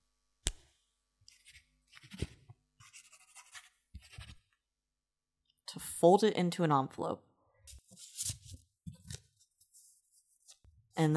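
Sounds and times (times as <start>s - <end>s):
pen scratching across paper: 1.3s - 4.4s
speech: 6.0s - 7.3s.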